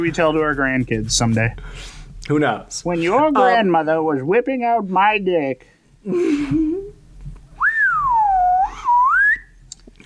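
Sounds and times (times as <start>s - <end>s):
speech: 0.0s - 6.8s
slide whistle played by a person: 7.6s - 9.5s.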